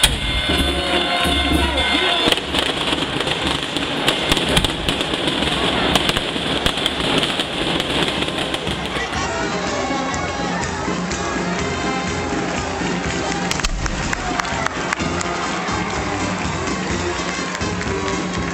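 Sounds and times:
fireworks exploding in the air: 0:00.0 - 0:09.3, 0:13.5 - 0:14.7
faint murmur of a crowd: 0:00.0 - 0:18.5.

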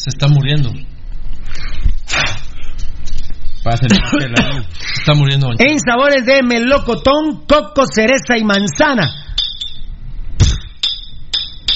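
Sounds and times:
speech: 0:00.0 - 0:00.9, 0:03.7 - 0:09.2
glass bottles of rehydration drink clinking together: 0:08.5 - 0:09.9, 0:10.8 - 0:11.7.

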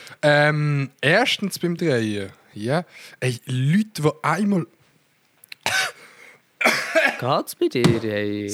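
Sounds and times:
raspy breath: 0:00.0 - 0:00.2, 0:05.9 - 0:06.5
speech: 0:00.1 - 0:04.8, 0:06.6 - 0:08.5
small throat clicks: 0:05.3 - 0:05.7
person coughing harshly from something stuck in throat: 0:05.7 - 0:06.0, 0:06.6 - 0:07.3.

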